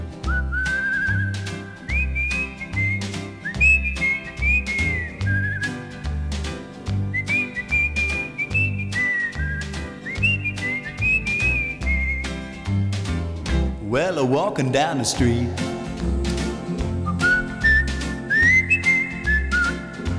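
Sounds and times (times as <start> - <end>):
melodic whistled tune: 0.2 - 13.3, 15.1 - 20.1
speech: 14.2 - 15.7.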